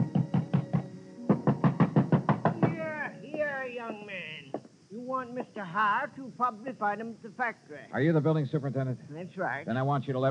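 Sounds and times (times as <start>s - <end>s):
heavy pounding on a door: 0.0s - 4.7s
speech: 5.4s - 10.2s.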